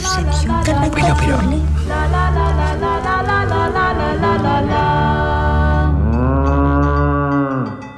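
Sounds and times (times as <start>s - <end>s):
speech: 0.2s - 4.8s
cow mooing in a long low bellow: 6.0s - 7.8s.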